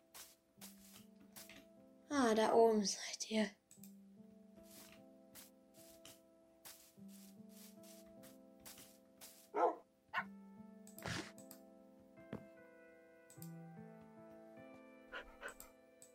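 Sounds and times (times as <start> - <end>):
speech: 2.1 - 3.6
soft repeated clicks: 3.7 - 4.0, 13.3 - 13.6
puppy barking: 9.6 - 10.3.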